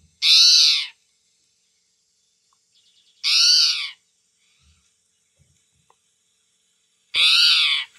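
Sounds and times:
spotted towhee calling buzzy rising-and-falling mews: 0.2s - 1.0s, 3.2s - 4.0s, 7.1s - 7.9s.

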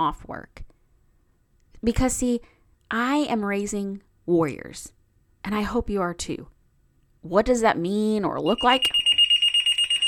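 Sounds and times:
speech: 0.0s - 0.7s, 1.8s - 6.5s, 7.2s - 9.0s
phone alarm for a work call beeping: 8.5s - 10.0s.

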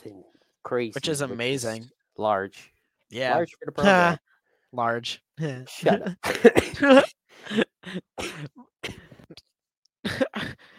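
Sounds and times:
speech: 0.0s - 9.0s
person coughing after hard laughter: 5.9s - 9.2s, 10.1s - 10.6s.

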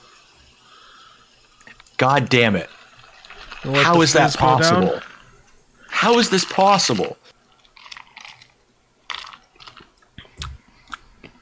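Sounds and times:
drink poured over ice: 1.6s - 10.0s
speech: 2.0s - 2.8s, 3.6s - 5.1s, 6.0s - 7.3s.

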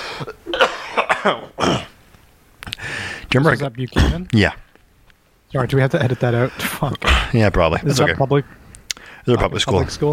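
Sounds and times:
raspy coughing fit: 0.1s - 2.0s
speech: 1.2s - 1.8s, 3.3s - 4.6s, 5.5s - 8.6s, 9.2s - 10.1s.

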